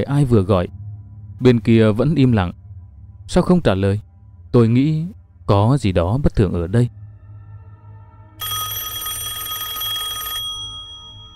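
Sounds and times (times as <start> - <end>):
speech: 0.0 - 0.8, 1.4 - 2.6, 3.3 - 7.0
low hum: 0.0 - 8.5
telephone ringing with a bright electronic tone: 8.4 - 11.3.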